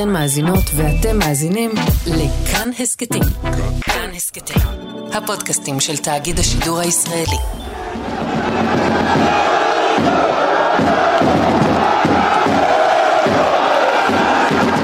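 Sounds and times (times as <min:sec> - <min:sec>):
speech: 0:00.0 - 0:11.4
large crowd of football fans cheering and chanting loudly: 0:07.2 - 0:14.8.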